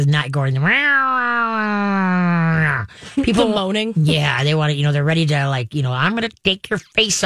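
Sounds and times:
speech: 0.0 - 7.2
two cats fighting and caterwauling: 0.5 - 2.9
laughter: 2.6 - 3.7.

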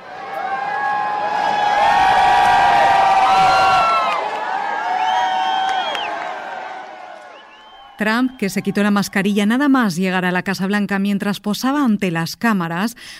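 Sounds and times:
supporters applauding: 0.0 - 9.5
supporters shouting and whooping: 0.0 - 9.5
crowd of supporters cheering: 0.0 - 9.7
speech: 8.0 - 13.1.

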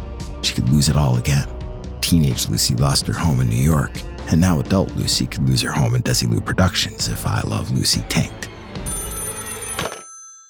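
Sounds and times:
speech: 0.5 - 8.5
old-fashioned telephone bell ringing: 8.8 - 10.4.

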